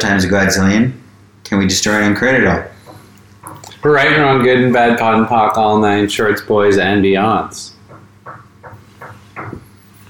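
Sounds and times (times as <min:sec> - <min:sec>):
speech: 0:00.0 - 0:02.8, 0:03.8 - 0:07.7
quiet hum: 0:00.0 - 0:10.0
knocking on a window: 0:07.8 - 0:10.0.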